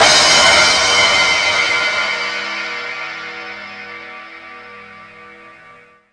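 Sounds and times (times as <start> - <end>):
drums: 0.0 - 4.9
cymbal: 0.0 - 6.1.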